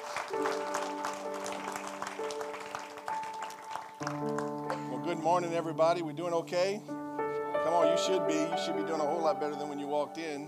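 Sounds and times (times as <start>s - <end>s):
congregation clapping: 0.0s - 5.2s
speech: 5.1s - 7.0s, 7.6s - 10.4s.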